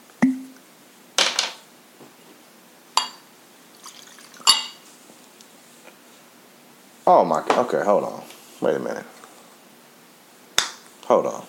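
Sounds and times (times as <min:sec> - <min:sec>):
glass clinking: 0:03.0 - 0:03.2, 0:04.4 - 0:04.8
liquor splashing into a glass: 0:03.8 - 0:04.8
speech: 0:07.1 - 0:09.2, 0:11.1 - 0:11.4.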